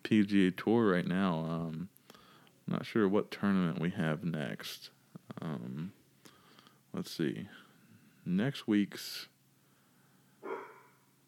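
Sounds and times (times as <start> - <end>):
speech: 0.1 - 2.0, 2.7 - 6.0, 6.9 - 7.6, 8.2 - 9.3
dog barking: 10.4 - 11.0.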